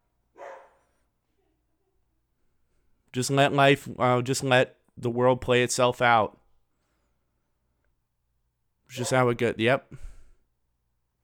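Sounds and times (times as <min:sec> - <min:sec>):
dog barking: 0:00.4 - 0:01.0
speech: 0:03.1 - 0:06.4, 0:08.9 - 0:10.1.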